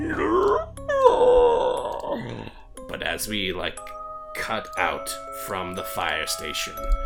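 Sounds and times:
person imitating an infected zombie horse groaning: 0.0 - 2.6
speech: 3.2 - 7.0.

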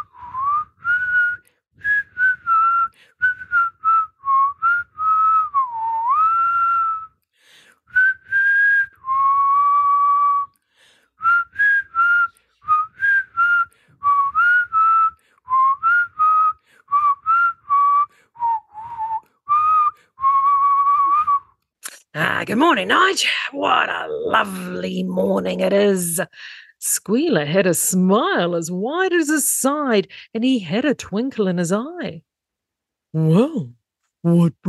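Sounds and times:
man whistling a breezy cheerful tune: 0.0 - 7.2, 7.9 - 10.6, 11.2 - 21.6
speech: 22.4 - 32.3, 33.1 - 34.6.

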